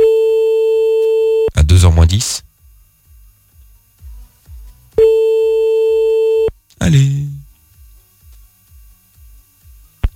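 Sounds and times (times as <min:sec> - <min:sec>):
telephone line tones while calling someone back: 0:00.0 - 0:01.6, 0:05.0 - 0:06.5
speech: 0:02.1 - 0:02.5.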